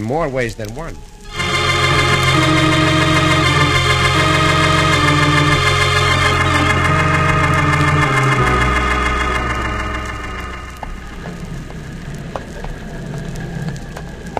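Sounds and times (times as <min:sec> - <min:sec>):
speech: 0:00.0 - 0:01.1
patter like rain on water: 0:00.0 - 0:01.3, 0:10.9 - 0:14.3
boat engine on a lake droning: 0:01.3 - 0:12.1.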